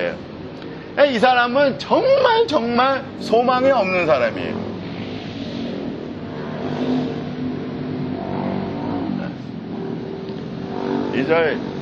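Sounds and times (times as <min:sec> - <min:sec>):
speech: 0:01.0 - 0:04.7, 0:11.2 - 0:11.7
motorcycles passing by outside: 0:02.8 - 0:11.8.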